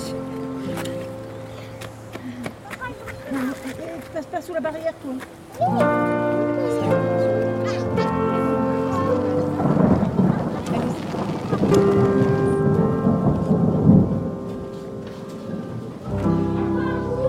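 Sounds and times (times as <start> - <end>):
steady rain in a thunderstorm: 0.0 - 17.2
speech: 4.2 - 6.0
low rumbling thunder: 8.2 - 17.2.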